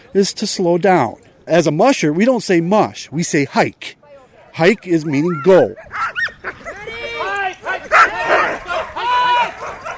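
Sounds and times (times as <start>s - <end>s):
speech: 0.1s - 4.0s, 4.6s - 6.0s
pack of sled dog huskies barking and yipping excitedly in a park: 5.2s - 9.9s.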